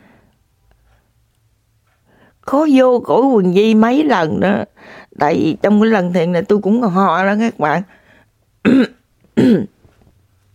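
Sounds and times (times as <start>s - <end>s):
speech: 2.5s - 8.0s, 8.6s - 9.8s
person coughing: 8.6s - 9.8s.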